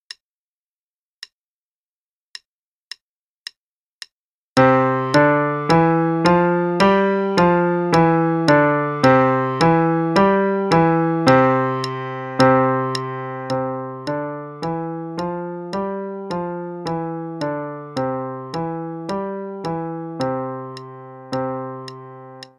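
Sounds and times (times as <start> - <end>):
C five finger scale warm-up: 4.6 - 22.5.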